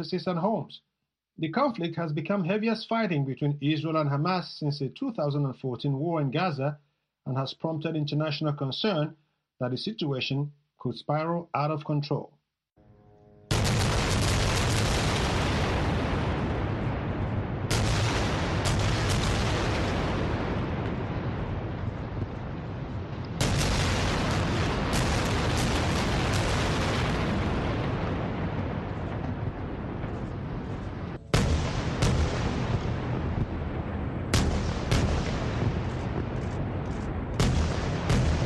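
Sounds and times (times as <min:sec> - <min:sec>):
speech: 0:00.0 - 0:12.4
rocket barrage fired into Israeli territory: 0:13.5 - 0:38.4
sharp cracks: 0:13.5 - 0:38.4
wind buffeting: 0:15.8 - 0:38.4.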